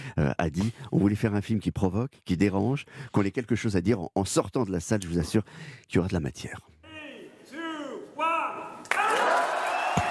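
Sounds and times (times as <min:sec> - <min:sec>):
speech: 0:00.2 - 0:06.7
crowd applauding loudly: 0:08.8 - 0:10.0.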